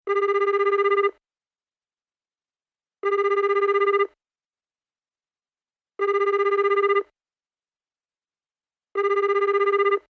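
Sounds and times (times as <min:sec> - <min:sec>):
telephone: 0:00.1 - 0:01.2, 0:03.0 - 0:04.2, 0:06.0 - 0:07.1, 0:09.0 - 0:10.0.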